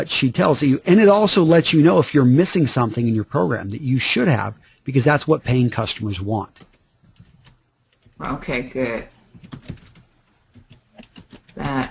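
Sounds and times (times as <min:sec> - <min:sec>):
speech: 0:00.0 - 0:06.7, 0:08.2 - 0:09.8, 0:11.6 - 0:11.8
keys clattering on a computer keyboard: 0:06.4 - 0:08.2, 0:09.3 - 0:11.8.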